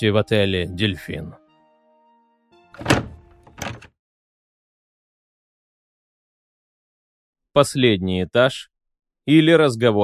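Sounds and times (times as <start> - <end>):
speech: 0.0 - 1.4, 2.8 - 3.1, 7.6 - 8.7, 9.3 - 10.0
door being opened with dull solid thunks: 2.8 - 3.9.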